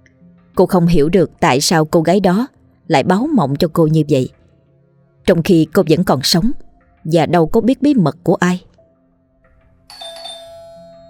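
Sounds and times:
speech: 0.6 - 4.4, 5.3 - 8.7
house doorbell ringing with an electronic chime: 9.9 - 11.0.

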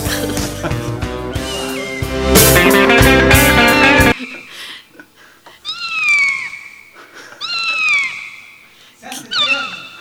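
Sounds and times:
loud music: 0.0 - 4.2
cat meowing: 5.6 - 6.7, 7.4 - 8.4, 9.1 - 10.0.

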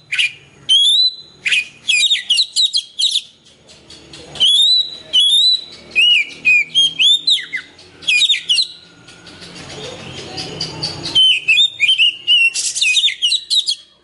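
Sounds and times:
Oriental magpie-robin singing rich whistles and slurred notes: 0.0 - 14.0.

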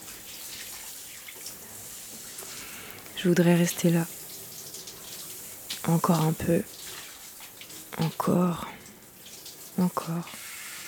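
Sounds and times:
warm shower water streaming and splashing over a body: 0.0 - 10.8
speech: 3.2 - 4.2, 5.9 - 6.8, 8.0 - 8.8, 9.8 - 10.4.

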